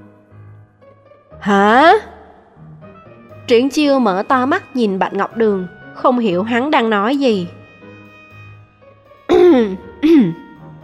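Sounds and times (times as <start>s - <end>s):
speech: 1.4s - 2.1s, 3.5s - 7.6s
light cough voiced by a person imitating it: 9.3s - 10.5s.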